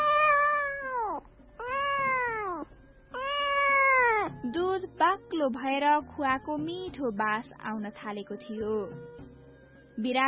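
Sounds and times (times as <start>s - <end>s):
cat meowing after being scalded by steam from boiling milk: 0.0s - 4.5s
speech: 5.4s - 9.2s, 10.0s - 10.2s.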